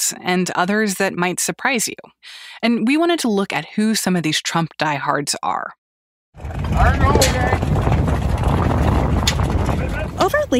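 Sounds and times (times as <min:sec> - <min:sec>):
speech: 0:00.1 - 0:05.8, 0:06.4 - 0:08.0, 0:10.2 - 0:10.5
motorboat engines rumbling at a boat parade: 0:06.4 - 0:10.5.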